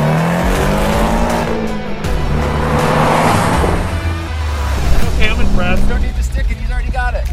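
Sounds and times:
car engine revving while accelerating: 0.0 - 6.3
tire noise: 0.0 - 7.3.

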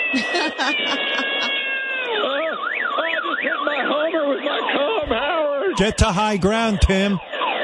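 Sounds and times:
laughter: 0.0 - 1.5, 5.8 - 7.2
cat meowing loudly: 0.0 - 2.2
speech: 0.1 - 7.3.

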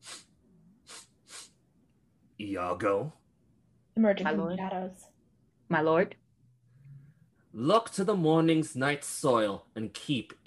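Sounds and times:
short breathy sniffs through the nose: 0.0 - 1.6
speech: 2.4 - 3.2, 4.0 - 5.1, 5.7 - 6.2, 7.6 - 10.4.

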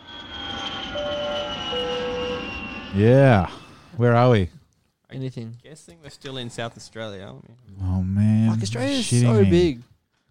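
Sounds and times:
airplane engine drone inside the cabin flying over Adelaide Australia: 0.0 - 3.9
speech: 2.9 - 9.9.

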